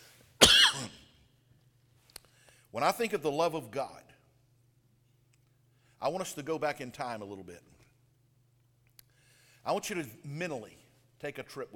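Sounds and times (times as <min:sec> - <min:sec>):
person coughing from a tickle in the throat: 0:00.4 - 0:01.1
speech: 0:02.8 - 0:04.1, 0:06.0 - 0:07.8, 0:09.6 - 0:11.7.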